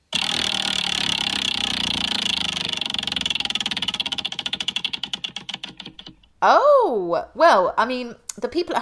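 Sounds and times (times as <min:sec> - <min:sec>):
prize wheel spinning: 0:00.0 - 0:06.4
speech: 0:06.4 - 0:08.7.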